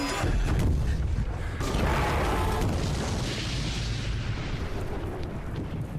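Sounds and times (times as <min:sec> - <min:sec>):
debris-like crackle: 0:00.1 - 0:05.9
powerful explosion with deep roaring rumble in a film scene: 0:00.5 - 0:05.9.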